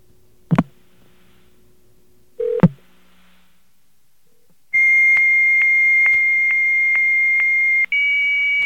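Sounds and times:
high-speed 9600 baud modem handshake tones: 0:04.8 - 0:08.6.

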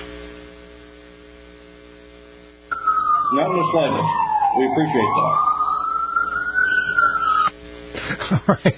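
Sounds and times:
police car siren: 0:02.7 - 0:07.5
speech: 0:03.4 - 0:05.5, 0:08.2 - 0:08.7.

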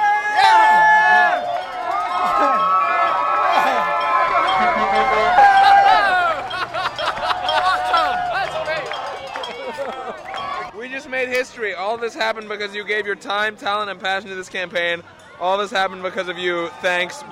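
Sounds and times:
many overlapping voices of a large crowd talking and calling out: 0:00.0 - 0:17.2
scattered laughter: 0:04.5 - 0:08.2
speech: 0:11.6 - 0:17.2.

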